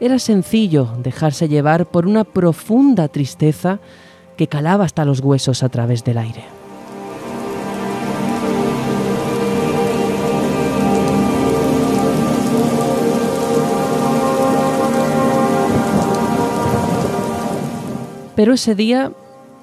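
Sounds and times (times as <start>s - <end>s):
speech: 0.0s - 6.6s, 18.4s - 19.2s
steady dense rain pouring: 6.2s - 19.6s
low rolling thunder: 7.1s - 18.4s.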